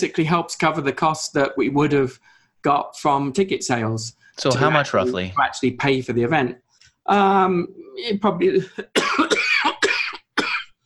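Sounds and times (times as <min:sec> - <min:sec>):
speech: 0:00.0 - 0:09.0
person coughing: 0:08.8 - 0:10.8.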